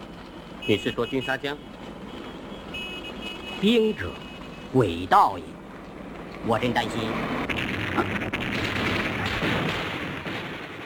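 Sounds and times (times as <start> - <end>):
speech: 0.7 - 1.8, 3.6 - 5.5, 6.4 - 8.7
machine gun firing in long bursts: 7.5 - 10.8.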